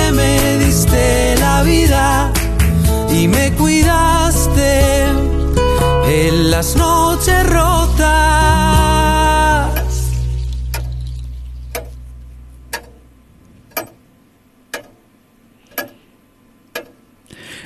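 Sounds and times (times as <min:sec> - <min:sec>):
low hum: 0:00.0 - 0:14.6
clock ticking: 0:11.7 - 0:11.9, 0:12.7 - 0:13.0, 0:13.7 - 0:14.0, 0:14.7 - 0:15.1, 0:15.7 - 0:16.0, 0:16.7 - 0:17.0.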